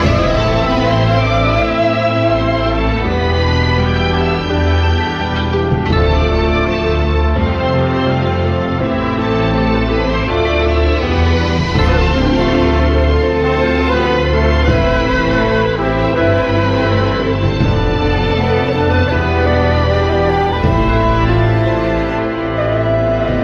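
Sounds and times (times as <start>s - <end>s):
uncertain sad string loop: 0.0s - 23.4s.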